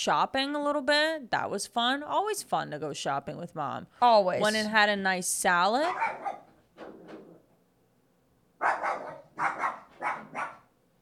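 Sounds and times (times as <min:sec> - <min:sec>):
speech: 0:00.0 - 0:07.1
dog barking at a neighbor coming in and out: 0:05.9 - 0:06.6, 0:08.6 - 0:10.7.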